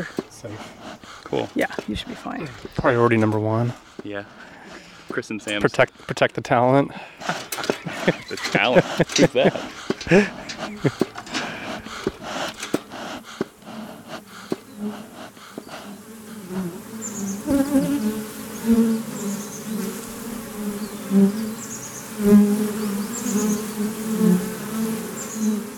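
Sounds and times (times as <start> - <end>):
laughter: 0.0 - 14.3
honeybees buzzing around an open hive: 0.0 - 25.7
speech: 1.3 - 7.4, 8.0 - 11.1
handling clicks and knocks: 7.3 - 13.6.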